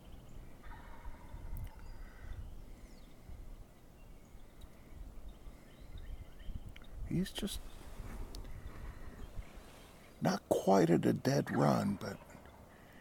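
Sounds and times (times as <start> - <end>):
wild turkey gobbler gobbling: 0.6 - 2.1, 11.8 - 12.8
speech: 7.2 - 7.8, 10.2 - 12.3.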